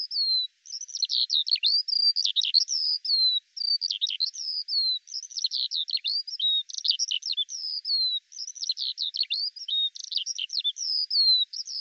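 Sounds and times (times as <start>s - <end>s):
Eurasian skylark song of chirps, buzzy notes and whistles: 0.0s - 11.7s.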